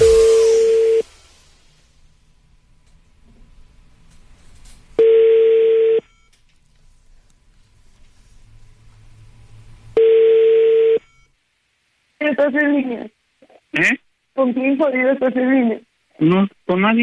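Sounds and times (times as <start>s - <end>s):
faint hum: 0.0s - 17.0s
telephone ring tones on the line after a number is dialed: 5.0s - 6.3s, 10.0s - 11.3s
speech: 12.4s - 17.0s.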